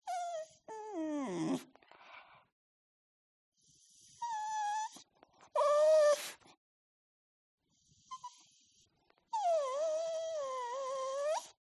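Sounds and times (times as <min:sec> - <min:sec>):
dog whimpering, sad and nervous: 0:00.0 - 0:01.7, 0:04.2 - 0:05.0, 0:05.6 - 0:06.4, 0:09.3 - 0:11.6.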